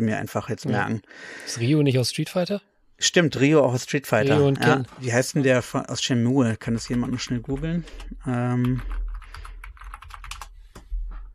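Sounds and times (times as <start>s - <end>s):
speech: 0.0s - 9.0s
quick uneven keystrokes on a computer keyboard: 6.8s - 10.9s.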